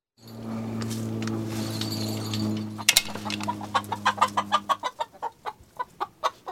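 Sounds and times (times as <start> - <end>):
steady low hum: 0.2 - 4.9
backyard chickens clucking and chattering in a chicken run: 2.8 - 6.5.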